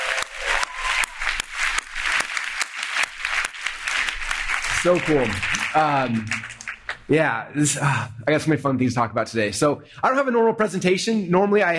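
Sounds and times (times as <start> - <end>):
crowd applauding with many hands clapping: 0.0 - 7.1
speech: 4.8 - 11.7.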